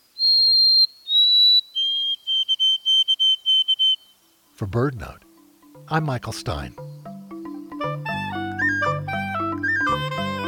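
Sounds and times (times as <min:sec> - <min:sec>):
white-throated sparrow whistled song: 0:00.0 - 0:04.4, 0:08.5 - 0:10.2
speech: 0:04.6 - 0:05.2, 0:05.9 - 0:06.9.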